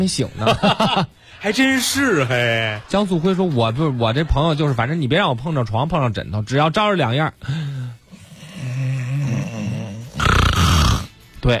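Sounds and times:
speech: 0.0s - 7.8s
laughter: 0.3s - 5.0s
person imitating snoring: 8.0s - 11.2s.

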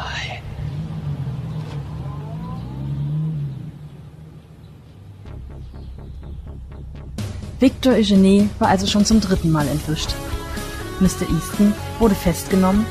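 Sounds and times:
convertible car engine rumbling while driving away: 0.0s - 12.8s
rising tone: 0.6s - 7.6s
speech: 7.6s - 10.3s, 11.0s - 12.8s.

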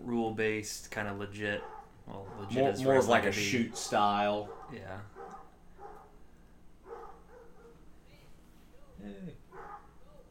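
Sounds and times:
speech: 0.0s - 5.2s
steady low hum: 0.0s - 10.2s
neighborhood dogs barking: 1.6s - 6.2s, 6.8s - 7.9s, 9.5s - 10.2s.

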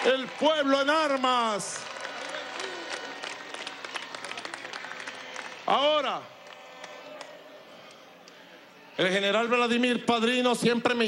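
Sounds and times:
speech: 0.0s - 2.0s, 5.7s - 6.3s, 9.0s - 11.0s
crowd applause at a public event honouring a national militia: 0.0s - 8.4s.

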